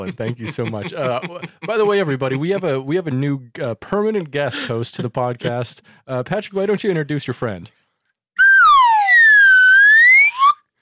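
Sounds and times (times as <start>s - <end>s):
laughter: 0.0s - 2.8s
speech: 0.0s - 7.8s
slide whistle: 8.4s - 10.6s.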